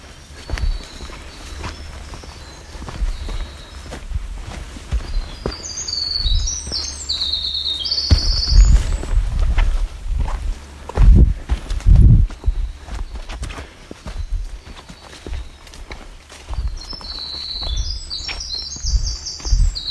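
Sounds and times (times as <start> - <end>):
Winter Wren singing on the Bruce Peninsula escarpment: 0.0 - 9.5, 11.1 - 13.4, 14.0 - 19.8
footsteps crunching on a trail: 0.0 - 19.8.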